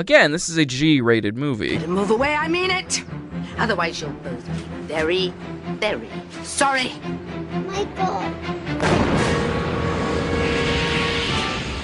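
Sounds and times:
speech: 0:00.0 - 0:08.6
rocket launching roar and rumble in a film: 0:08.8 - 0:11.8.

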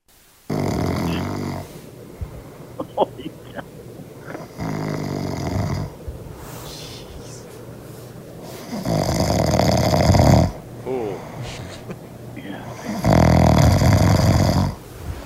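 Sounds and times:
quiet human breathing: 0:00.4 - 0:15.2
loud rumbling human snoring: 0:00.5 - 0:01.9, 0:04.2 - 0:07.4, 0:08.5 - 0:11.8, 0:12.6 - 0:14.9
laughter: 0:02.8 - 0:04.5, 0:10.9 - 0:12.2.

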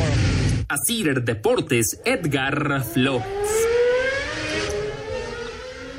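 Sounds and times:
Formula 1 car engine screaming as it accelerates: 0:00.0 - 0:00.6, 0:02.0 - 0:05.9
speech: 0:00.7 - 0:03.7.

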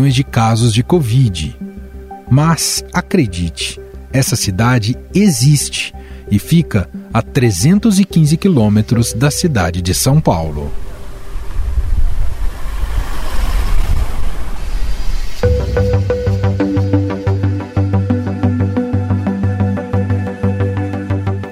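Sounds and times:
speech: 0:00.0 - 0:01.7, 0:02.3 - 0:10.8
breezy outdoor rush in a town square: 0:09.4 - 0:19.8
music with a steady beat in a town square: 0:15.4 - 0:21.5.

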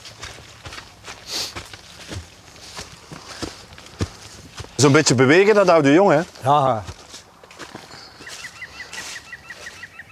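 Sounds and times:
footsteps outdoors: 0:00.0 - 0:09.9
speech: 0:04.8 - 0:07.0
green woodpecker alarm call: 0:07.9 - 0:10.1.

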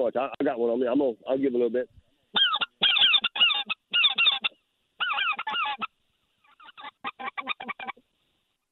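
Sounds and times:
speech: 0:00.0 - 0:02.0
flock of hundreds of geese honking as they fly overhead: 0:02.3 - 0:08.0.

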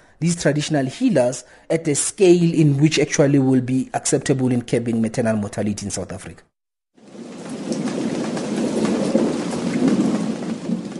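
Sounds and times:
speech: 0:00.2 - 0:06.5
deep rolling thunder rumbling: 0:07.0 - 0:10.9
heavy rain pouring: 0:07.0 - 0:10.9.

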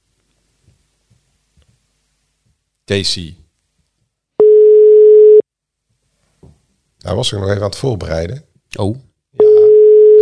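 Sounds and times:
speech: 0:02.9 - 0:03.4, 0:07.0 - 0:09.1
telephone ringing tone while a call connects: 0:04.4 - 0:05.4, 0:09.6 - 0:10.1.

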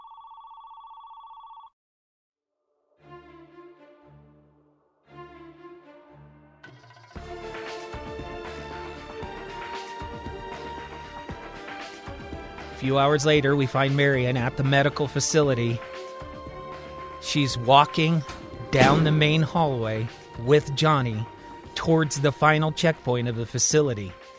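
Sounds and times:
woman's phone ringing with a steady electronic tone: 0:00.0 - 0:01.8
music: 0:02.7 - 0:24.3
speech: 0:12.8 - 0:15.9, 0:17.3 - 0:24.2.

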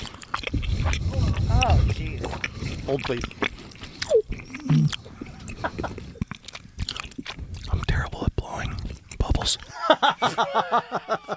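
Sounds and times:
wet sticky gum chewing close to the microphone: 0:00.0 - 0:09.7
speech: 0:02.9 - 0:03.4
laughter: 0:05.2 - 0:06.2, 0:09.6 - 0:11.3.

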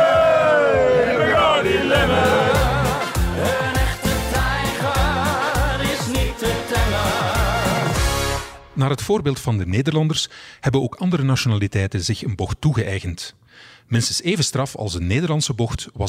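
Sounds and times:
crowd of cycling fans bellowing a Dutch-language drinking song: 0:00.0 - 0:08.0
thumping steady party beat: 0:00.0 - 0:08.4
speech: 0:08.8 - 0:16.0.

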